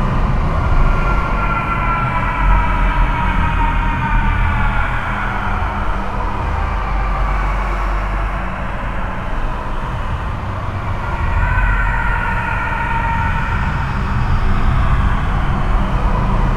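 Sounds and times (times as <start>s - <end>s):
scream loop ambience: 0.2s - 16.5s.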